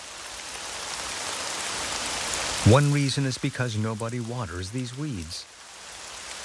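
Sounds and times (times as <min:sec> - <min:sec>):
rain pattering on a surface: 0:00.0 - 0:06.4
speech: 0:02.7 - 0:05.6.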